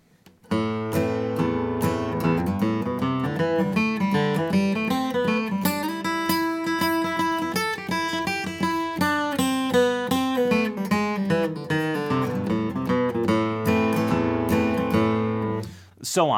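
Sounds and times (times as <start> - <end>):
guitar playing fast lick over A minor: 0.5 - 15.8.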